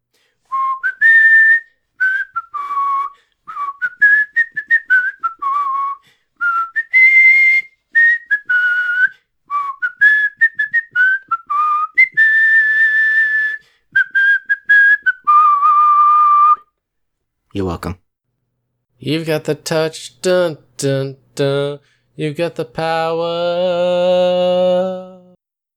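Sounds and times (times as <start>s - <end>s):
person whistling a theme song melody: 0.5s - 16.7s
speech: 17.7s - 18.0s, 19.0s - 25.1s.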